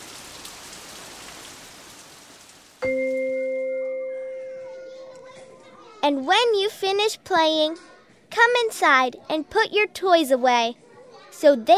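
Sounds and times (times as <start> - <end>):
steady dense rain: 0.0 - 3.4
loud sustained bell-like tone: 2.8 - 5.7
speech: 6.1 - 10.8, 11.4 - 11.7.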